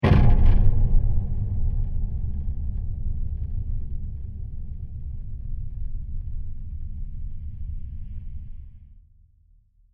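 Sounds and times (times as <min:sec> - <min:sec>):
mysterious digital impact with delays: 0:00.0 - 0:07.2.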